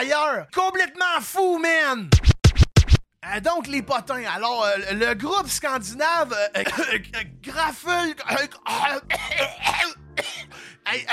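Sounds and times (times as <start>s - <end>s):
speech: 0.0s - 2.4s, 3.2s - 11.1s
person clearing their throat: 6.6s - 7.1s, 8.3s - 10.5s
person coughing: 6.6s - 7.2s, 8.3s - 10.7s.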